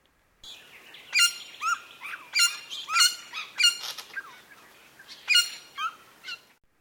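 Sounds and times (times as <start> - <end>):
silver-crowned friarbird giving squeaky honking calls: 1.1 - 4.4, 5.1 - 6.4.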